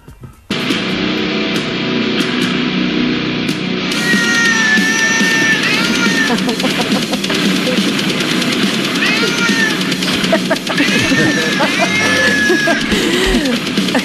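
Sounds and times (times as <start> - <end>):
loud dense death metal music played by a band: 0.5 - 14.0
stray cat yowling and screeching: 3.9 - 6.6, 8.9 - 10.0, 10.7 - 12.9
laughter: 4.5 - 14.0.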